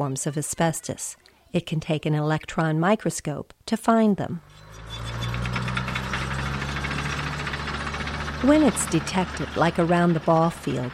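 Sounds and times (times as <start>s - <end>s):
speech: 0.0s - 4.7s, 8.4s - 10.9s
dump truck heavy diesel engine rumbling while hauling asbestos-contaminated soil: 4.4s - 10.9s.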